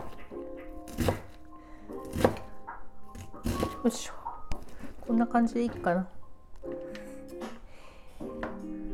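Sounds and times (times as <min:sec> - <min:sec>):
kitchen knife chopping food on cutting board: 0:00.9 - 0:01.4, 0:02.0 - 0:02.5, 0:03.1 - 0:03.8
speech: 0:03.8 - 0:04.2, 0:05.1 - 0:06.2.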